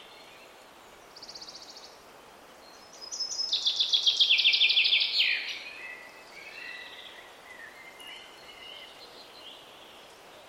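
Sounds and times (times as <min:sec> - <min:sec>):
common chaffinch singing: 0:00.0 - 0:10.4.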